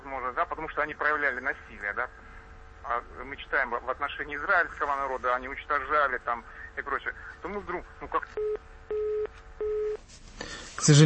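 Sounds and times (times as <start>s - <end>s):
speech: 0.6s - 2.2s, 2.8s - 9.0s, 10.8s - 11.0s
telephone line tone beeps after a dropped call: 8.4s - 10.0s.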